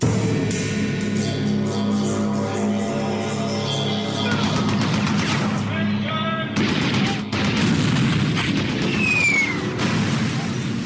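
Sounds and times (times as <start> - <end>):
dense rumbling background with sustained tones: 0.0 - 10.8
machine gun fire crackling: 4.4 - 5.6, 6.6 - 10.8.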